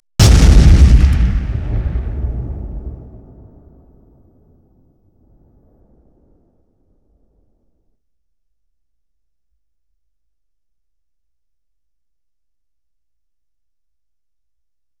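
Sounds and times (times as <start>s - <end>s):
explosion in 5.1 surround: 0.2s - 6.4s.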